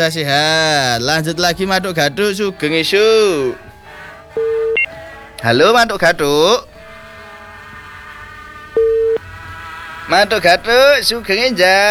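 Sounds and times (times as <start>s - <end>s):
speech: 0.0s - 3.7s, 5.4s - 6.7s, 10.1s - 11.9s
telephone busy tone on a dropped call-in line: 4.4s - 5.0s, 8.8s - 9.2s.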